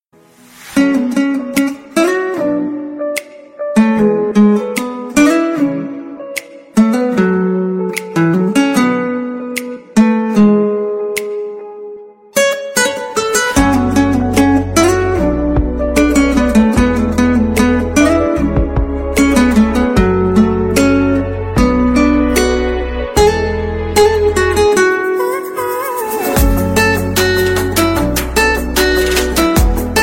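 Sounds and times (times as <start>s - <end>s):
guitar version ringtone melody: 0.8s - 30.0s.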